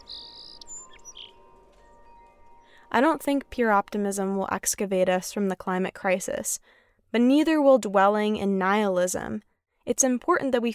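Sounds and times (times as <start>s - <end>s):
songbirds singing outdoors: 0.0s - 2.9s
speech: 2.9s - 10.7s.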